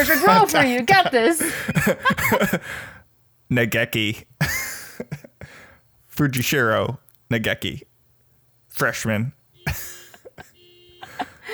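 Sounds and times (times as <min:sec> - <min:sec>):
laughter: 0:00.0 - 0:02.8, 0:04.4 - 0:05.6, 0:09.7 - 0:11.5
soft breathy noises: 0:00.0 - 0:03.1, 0:04.6 - 0:06.4, 0:09.6 - 0:11.5
speech: 0:00.0 - 0:05.3, 0:06.2 - 0:07.9, 0:08.8 - 0:09.9
car alarm electronic beep: 0:01.5 - 0:02.1, 0:09.5 - 0:11.5.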